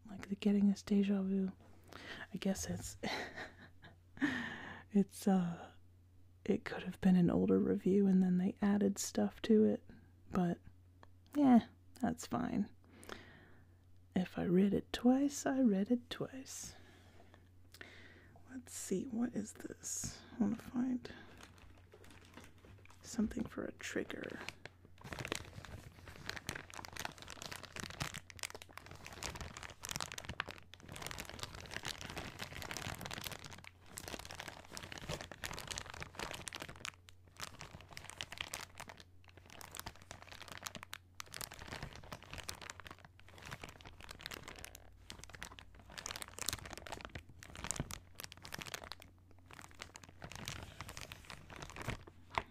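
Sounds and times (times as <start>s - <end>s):
speech: 0.4s - 3.5s, 5.0s - 5.7s, 6.4s - 10.7s, 11.4s - 12.8s, 14.2s - 16.8s, 18.5s - 21.3s, 23.0s - 25.2s
plastic bag holding cough medicine crinkling: 20.1s - 52.4s.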